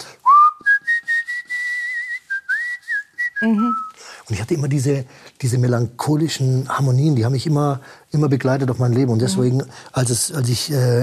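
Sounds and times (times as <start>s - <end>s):
person whistling a slow melody: 0.2s - 4.0s
speech: 3.4s - 11.0s.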